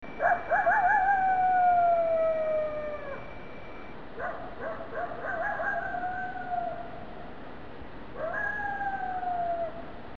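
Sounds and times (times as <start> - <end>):
coyote howls: 0.2 - 3.4, 5.2 - 7.0, 8.2 - 9.9.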